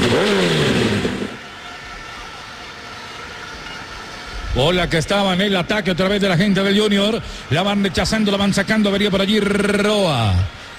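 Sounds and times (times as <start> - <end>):
motorcycle engine starting and revving: 0.0 - 1.5
speech: 4.6 - 10.7.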